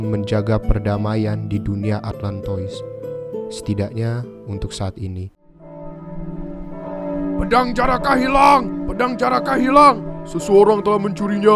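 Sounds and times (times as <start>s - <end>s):
speech: 0.0s - 2.9s, 3.5s - 5.4s, 7.4s - 11.5s
large temple bell rung hard as an alarm: 5.6s - 11.5s.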